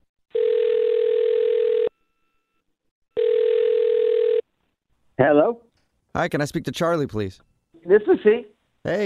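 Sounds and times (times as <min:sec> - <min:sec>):
steady telephone dial tone: 0:00.3 - 0:01.9, 0:03.1 - 0:04.5
speech: 0:05.2 - 0:09.0.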